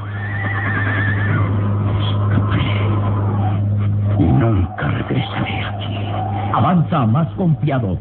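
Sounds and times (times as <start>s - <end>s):
horse whinnying in a stable with straw: 0.0s - 2.2s
steady low hum: 0.0s - 8.0s
speech: 6.6s - 8.0s.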